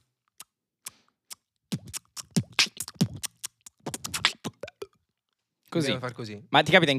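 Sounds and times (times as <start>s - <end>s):
vocal beatbox imitation of kitchen stove burners ticking and hissing: 0.0s - 4.9s
speech: 5.7s - 6.9s.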